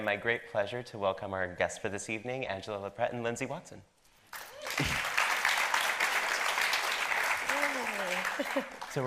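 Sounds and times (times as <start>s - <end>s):
speech: 0.0s - 4.9s, 8.4s - 9.0s
sustained applause from an audience: 4.4s - 9.0s.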